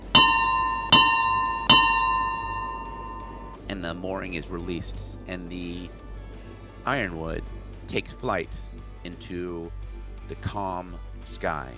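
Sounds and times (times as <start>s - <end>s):
ship's bell ringing: 0.0s - 3.6s
speech: 3.7s - 6.0s, 6.8s - 11.7s.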